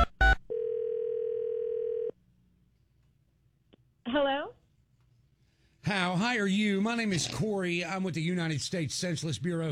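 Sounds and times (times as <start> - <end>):
longer sustained telephone tone: 0.2 - 2.1
steady telephone dial tone: 0.5 - 2.1
speech: 6.4 - 9.6.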